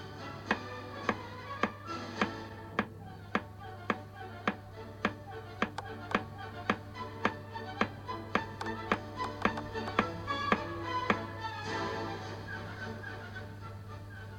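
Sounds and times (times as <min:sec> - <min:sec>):
low steady hum: 0:00.0 - 0:14.3
quiet music: 0:00.0 - 0:14.3
crisp steady taps keeping an even beat: 0:00.5 - 0:11.3.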